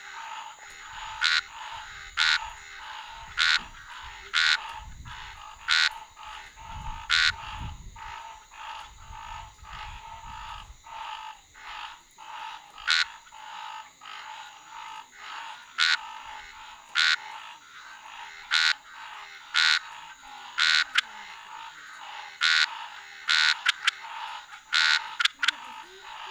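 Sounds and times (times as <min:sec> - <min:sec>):
Scinax ruber frog calling: 0:00.0 - 0:26.2.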